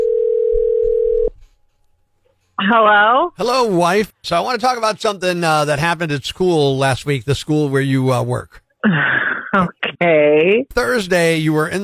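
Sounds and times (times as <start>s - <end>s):
telephone tone while placing a call: 0.0s - 1.3s
speech: 2.7s - 11.8s.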